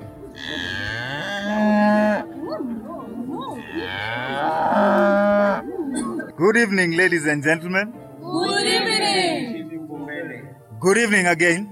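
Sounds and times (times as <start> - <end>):
cattle mooing at dusk as villagers drive them into bomas: 0.3 - 6.0
speech: 6.4 - 8.8, 10.8 - 11.7.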